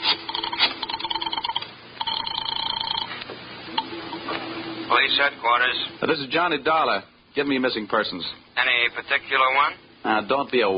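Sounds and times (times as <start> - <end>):
ringing phone tone of a call placed to police headquarters: 0.2 - 3.2
speech: 5.0 - 10.7.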